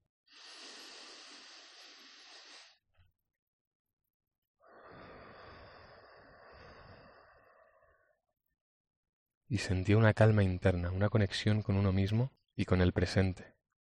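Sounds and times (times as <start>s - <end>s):
deep breath in and out at night on a rooftop terrace: 0.3s - 2.9s, 4.6s - 8.3s
speech: 9.5s - 13.5s.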